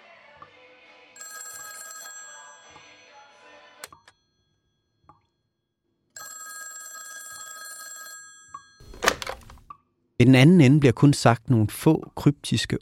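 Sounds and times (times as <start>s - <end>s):
telephone bell ringing in an apartment: 1.2s - 5.1s, 6.2s - 9.0s
speech: 10.2s - 12.8s.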